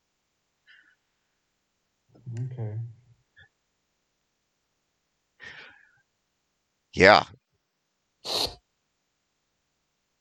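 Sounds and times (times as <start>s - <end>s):
speech: 2.2s - 3.0s, 7.0s - 7.4s
person sneezing forcefully: 8.2s - 8.6s.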